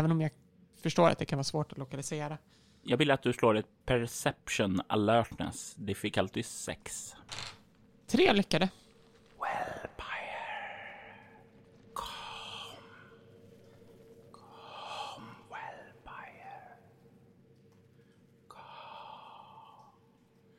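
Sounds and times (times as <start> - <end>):
speech: 0.0 - 7.5, 8.1 - 8.8
distant echoing breathy whispers: 9.4 - 17.4.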